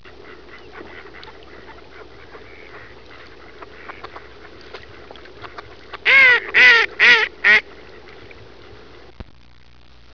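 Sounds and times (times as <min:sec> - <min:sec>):
mallard duck: 0:00.0 - 0:07.6.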